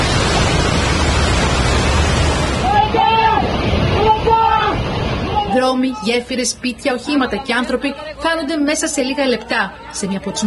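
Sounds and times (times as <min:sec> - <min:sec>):
rushing flood torrent of mud and water: 0:00.0 - 0:10.4
shouted voices: 0:02.6 - 0:10.4
speech: 0:05.6 - 0:10.4.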